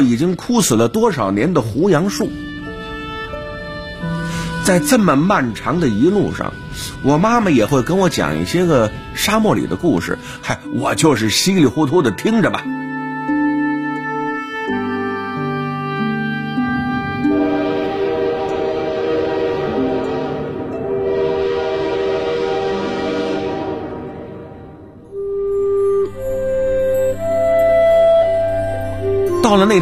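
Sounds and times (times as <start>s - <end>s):
speech: 0.0s - 2.5s, 4.7s - 12.9s, 29.5s - 29.8s
sustained musical tones: 0.0s - 29.8s
train horn blast arriving at a small end-of-line station: 2.0s - 10.7s, 12.8s - 27.3s.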